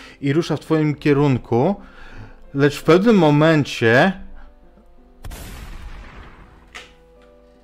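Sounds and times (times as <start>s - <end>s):
speech: 0.2s - 4.2s
loud gunshot: 5.2s - 6.9s.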